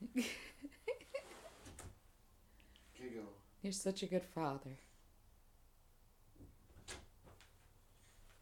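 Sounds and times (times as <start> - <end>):
speech: 0.2 - 0.4, 3.6 - 4.9
door creaking: 6.4 - 7.5.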